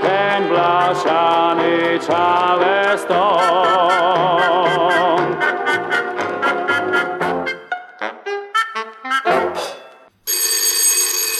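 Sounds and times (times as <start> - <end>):
lively music: 0.0 - 10.1
speech: 0.5 - 4.5
telephone ringing: 10.2 - 11.3.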